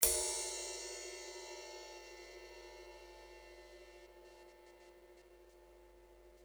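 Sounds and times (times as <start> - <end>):
ride cymbal bow hit: 0.0 - 4.0.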